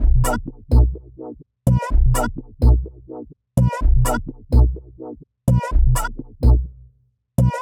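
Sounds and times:
groove music: 0:00.0 - 0:06.8, 0:07.4 - 0:07.5.

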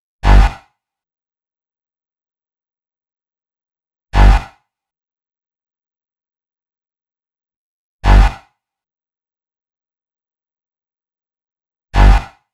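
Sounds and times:
complex electro synth bass: 0:00.2 - 0:00.5, 0:04.2 - 0:04.4, 0:08.0 - 0:08.4, 0:12.0 - 0:12.3.

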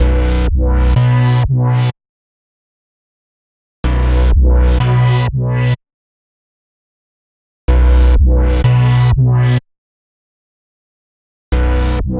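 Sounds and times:
electro synth bass in B minor at 125 BPM: 0:00.0 - 0:01.9, 0:03.8 - 0:05.8, 0:07.7 - 0:09.6, 0:11.5 - 0:12.1.

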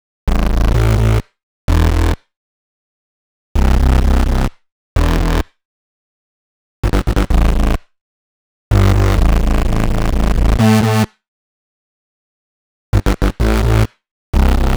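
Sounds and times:
bass in A minor: 0:00.3 - 0:02.2, 0:03.6 - 0:05.5, 0:06.8 - 0:07.9, 0:08.7 - 0:11.2, 0:12.9 - 0:14.7.

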